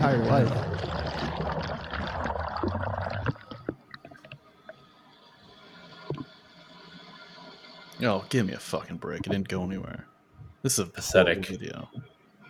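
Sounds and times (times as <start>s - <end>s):
speech: 0.0s - 1.6s, 8.0s - 12.1s
toilet flushing recorded by a GoPro camera inside the bowl: 0.0s - 3.5s
water dripping and gurgling in toilet: 0.0s - 4.8s, 5.9s - 6.4s, 9.1s - 9.5s.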